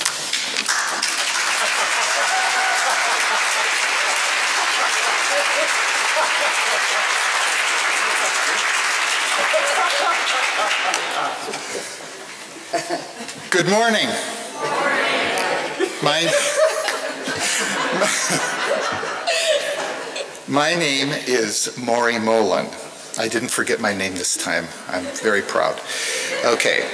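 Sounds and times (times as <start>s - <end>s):
loud applause from a large audience: 0.0s - 11.9s
laughter: 1.2s - 13.5s, 14.6s - 20.5s, 24.3s - 26.9s
speech: 12.7s - 16.7s, 17.6s - 19.8s, 20.5s - 26.9s.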